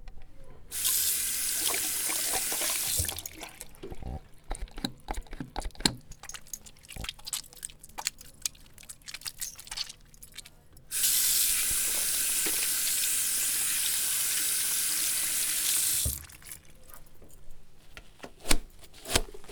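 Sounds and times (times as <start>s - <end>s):
tap water running at a sink: 0.7s - 7.2s, 8.0s - 16.8s
hands washed with water and soap before lunch at school: 0.7s - 17.2s
water dripping and splashing: 0.8s - 13.1s, 15.6s - 17.1s.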